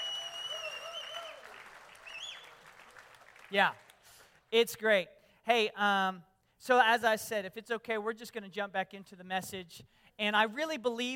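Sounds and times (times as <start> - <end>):
whistles: 0.0 - 2.6
cheers: 0.0 - 3.5
audience applause for a group of performers: 0.0 - 4.3
speech: 3.5 - 3.8, 4.5 - 11.1.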